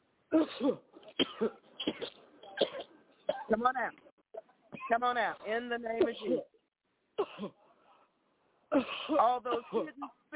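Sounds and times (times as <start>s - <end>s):
speech: 0.3s - 2.2s, 3.5s - 4.0s, 4.9s - 6.5s, 7.2s - 7.6s, 8.7s - 10.3s
person coughing during a deliverance prayer: 0.3s - 3.5s, 7.2s - 7.6s, 8.7s - 10.2s.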